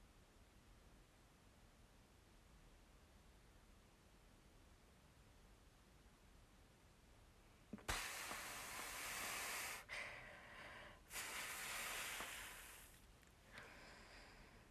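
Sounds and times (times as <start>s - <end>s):
slow breathing during a breathing exercise: 7.8s - 14.6s.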